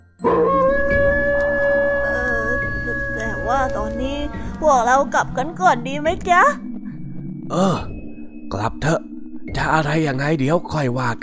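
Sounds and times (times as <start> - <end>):
dog howling: 0.2 - 4.0
speech: 3.7 - 6.6, 7.5 - 7.9, 8.5 - 11.2.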